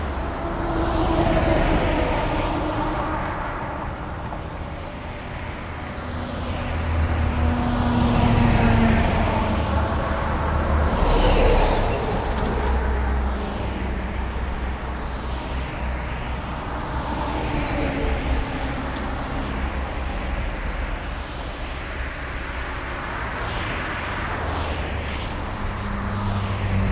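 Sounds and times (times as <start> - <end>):
traffic passing by in Meda Milano Italy: 0.0 - 26.9.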